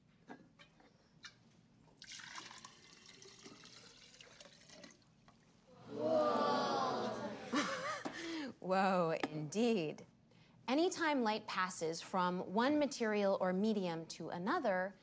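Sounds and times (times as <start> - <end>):
water pouring into a glass for a light refraction demonstration: 2.0 - 5.1
laughter: 5.8 - 8.2
speech: 8.7 - 10.1, 10.7 - 15.0.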